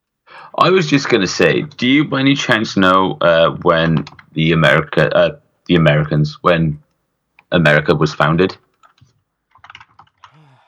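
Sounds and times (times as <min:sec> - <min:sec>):
speech: 0:00.6 - 0:06.8, 0:07.5 - 0:08.6
typing on a computer keyboard: 0:03.6 - 0:04.4, 0:08.7 - 0:10.4.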